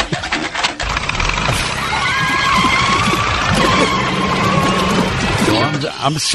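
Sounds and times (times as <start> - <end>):
car engine cranking and catching in the morning: 0.0 - 6.0
car engine running with a rough rattling drone: 0.8 - 5.8
speech: 6.0 - 6.3.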